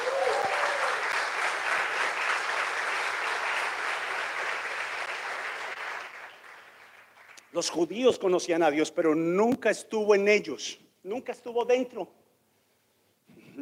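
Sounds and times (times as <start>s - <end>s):
church audience applauding: 0.0s - 7.5s
speech: 7.6s - 12.2s.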